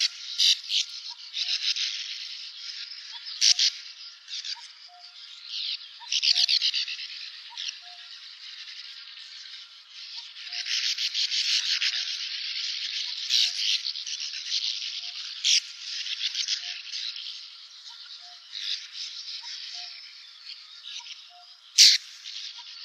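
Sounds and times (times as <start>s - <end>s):
sand martins chattering: 0.0s - 22.8s.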